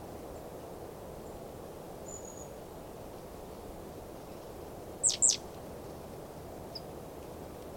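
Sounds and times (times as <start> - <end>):
low steady background hiss: 0.0 - 7.7
great tit Parus major calls: 5.0 - 5.4.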